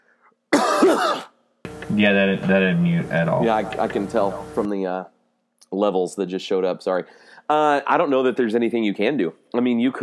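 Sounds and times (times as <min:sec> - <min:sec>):
person coughing at a microphone: 0:00.5 - 0:01.4
rough throat clearing: 0:00.6 - 0:01.4
speech: 0:00.9 - 0:01.3, 0:01.9 - 0:10.0.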